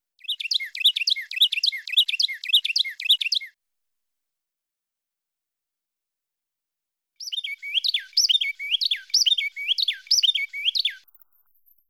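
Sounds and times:
Carolina wren singing: 0.2 - 3.5, 7.2 - 11.8.

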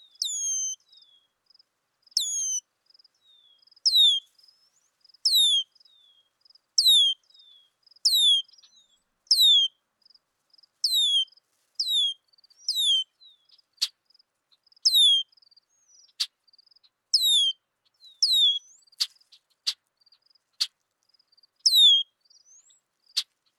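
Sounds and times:
red-winged blackbird calling with whistles and clicks: 0.1 - 0.8, 2.2 - 2.6, 3.9 - 4.3, 5.3 - 5.7, 6.8 - 7.2, 8.1 - 9.7, 10.8 - 13.0, 14.9 - 15.2, 17.2 - 18.8, 21.7 - 22.8.

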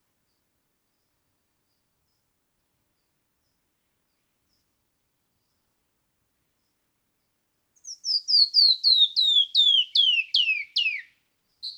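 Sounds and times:
canyon wren song of bright downslurred whistles: 7.8 - 11.7.

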